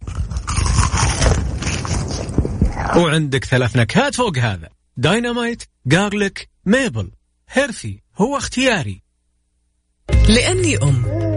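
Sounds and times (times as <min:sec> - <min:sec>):
crunching and chewing of a fried chicken fillet: 0:00.0 - 0:02.6
speech: 0:03.0 - 0:09.0, 0:10.1 - 0:11.2.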